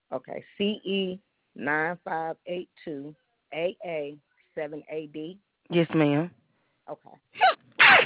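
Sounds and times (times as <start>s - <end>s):
speech: 0.1s - 8.0s
loud sneeze: 7.4s - 8.0s.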